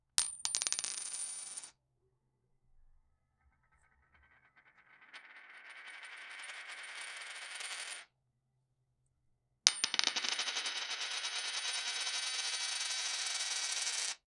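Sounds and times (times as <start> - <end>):
coin dropping: 0.2 - 1.7, 4.6 - 8.1, 9.7 - 14.2.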